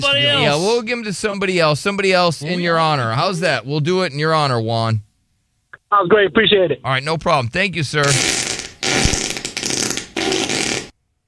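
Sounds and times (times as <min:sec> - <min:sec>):
speech: 0:00.0 - 0:05.1, 0:05.9 - 0:08.4
fart sound effect: 0:08.0 - 0:10.9.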